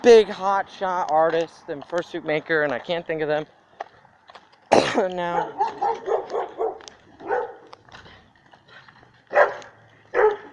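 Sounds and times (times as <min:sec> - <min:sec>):
speech: 0:00.0 - 0:03.6, 0:04.9 - 0:06.1
dog barking in a neighborhood: 0:05.3 - 0:07.7, 0:09.3 - 0:10.5.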